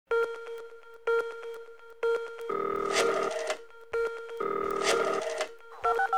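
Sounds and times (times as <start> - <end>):
telephone keypad tones dialing a password into a voicemail system: 2.4 - 6.1.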